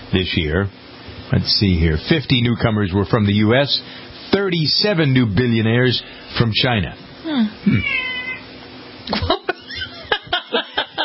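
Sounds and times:
speech: 0.1s - 8.1s, 9.1s - 9.4s
cat meowing: 7.7s - 8.5s
laughter: 9.1s - 11.0s.

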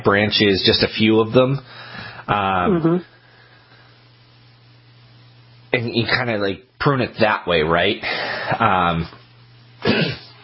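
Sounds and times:
speech: 0.0s - 3.1s, 5.7s - 9.2s, 9.8s - 10.2s
person with allergies coughing or clearing throat: 9.8s - 10.4s.

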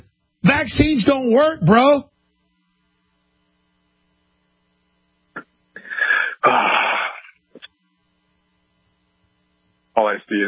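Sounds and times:
speech: 0.5s - 2.1s, 6.4s - 6.8s, 10.0s - 10.4s
person sneezing: 5.4s - 7.7s.

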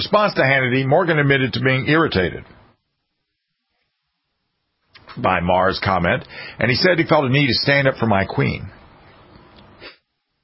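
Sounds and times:
speech: 0.0s - 2.6s, 5.2s - 8.8s
muffled stifled breathy sneeze: 9.8s - 10.1s.

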